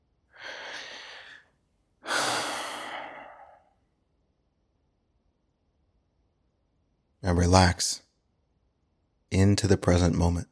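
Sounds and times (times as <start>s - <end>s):
deep breath in and out during a guided meditation: 0.3s - 3.8s
speech: 7.2s - 8.0s, 9.3s - 10.5s.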